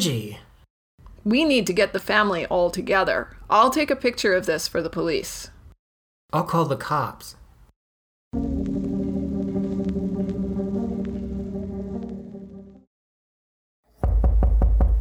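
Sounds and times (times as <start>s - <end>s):
speech: 0.0s - 0.5s, 1.2s - 5.6s, 6.3s - 7.4s, 8.3s - 8.6s
steady droning tone: 8.4s - 12.8s
rapid loud knocks on a door: 14.0s - 15.0s.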